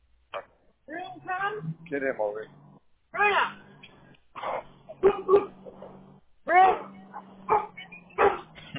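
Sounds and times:
speech: 1.5 - 3.6
loose dogs barking: 3.3 - 8.7.

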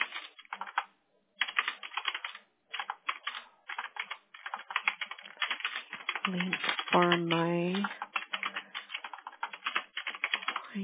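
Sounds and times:
typing on a computer keyboard: 0.0 - 10.7
speech: 6.3 - 8.0.

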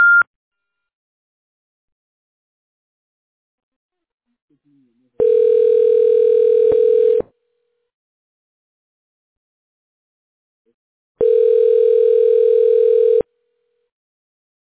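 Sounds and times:
high telephone beep on a call-screening line: 0.0 - 0.3, 5.2 - 7.2, 11.2 - 13.2
steady lower telephone tone on a call-screening line: 5.2 - 7.3, 11.2 - 13.3.

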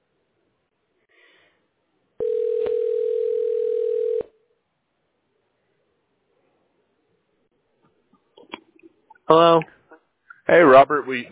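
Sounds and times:
telephone ringback tone on a call: 2.2 - 4.3
speech: 9.3 - 9.7, 10.8 - 11.2.

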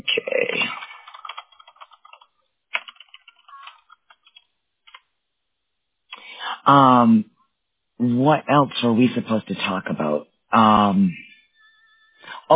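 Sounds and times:
typing on a computer keyboard: 0.5 - 5.0
speech: 6.7 - 7.3, 8.0 - 11.2.

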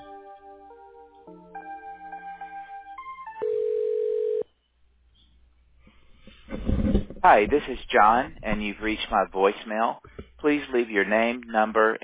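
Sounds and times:
sustained telephone tone: 3.3 - 4.5
electronic telephone beeps of a call being transferred: 3.4 - 4.4
speech: 7.2 - 12.0.

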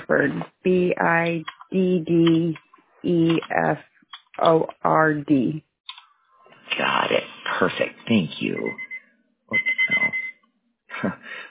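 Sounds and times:
speech: 0.1 - 5.7, 6.8 - 8.8, 9.5 - 9.7, 11.0 - 11.4
timer alarm with rapid pulsing electronic beeps: 8.6 - 10.4.

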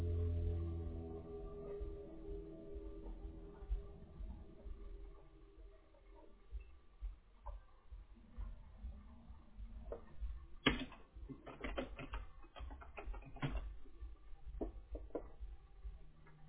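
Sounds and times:
steady low hum: 0.0 - 16.4
clicky typing on a computer keyboard: 10.6 - 13.8.

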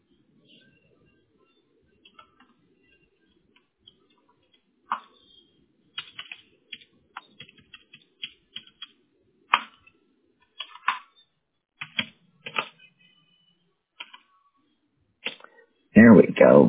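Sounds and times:
typing a text message on a computer keyboard: 2.0 - 5.1, 5.9 - 11.2, 11.8 - 12.9, 14.0 - 14.3
speech: 16.2 - 16.6.

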